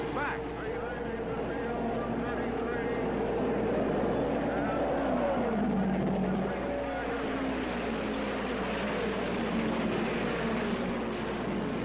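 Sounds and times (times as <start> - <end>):
turbine Offie and Ford race car engines accelerating at a race start: 0.0 - 11.8.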